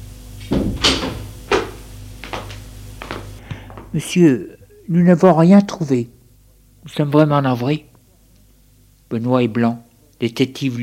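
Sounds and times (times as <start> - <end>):
low steady hum: 0.0 - 10.8
wooden door opening with a clunk and rattle: 0.5 - 1.8
speech: 3.9 - 6.2, 6.8 - 7.9, 9.1 - 10.8.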